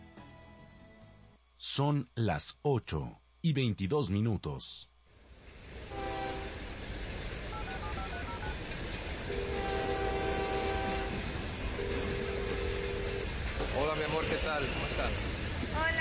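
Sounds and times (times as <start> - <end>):
speech: 1.6 - 4.9, 13.8 - 15.9
train at a station with steady loud rail noise: 5.2 - 15.9
sustained tonal horn-like notes of a train at a station: 5.8 - 6.7, 9.3 - 15.1.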